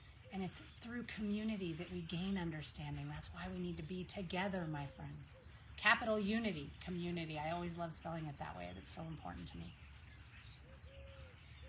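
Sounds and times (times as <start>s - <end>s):
birds chirping outdoors: 0.0s - 11.6s
speech: 0.4s - 9.8s.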